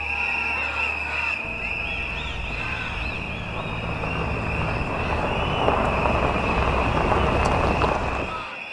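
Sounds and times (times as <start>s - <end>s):
thin steady whine: 0.0s - 8.4s
military trucks rumbling: 1.4s - 8.6s.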